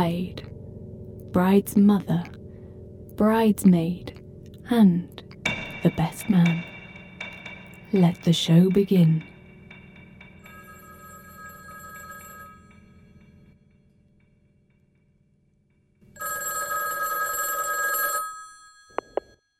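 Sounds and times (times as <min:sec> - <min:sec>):
speech: 0:00.0 - 0:00.6, 0:01.3 - 0:02.4, 0:03.2 - 0:04.1, 0:04.7 - 0:05.2, 0:05.8 - 0:06.7, 0:07.9 - 0:09.3
low hum: 0:00.0 - 0:16.0
old-fashioned telephone bell ringing: 0:10.5 - 0:13.4, 0:16.2 - 0:19.5.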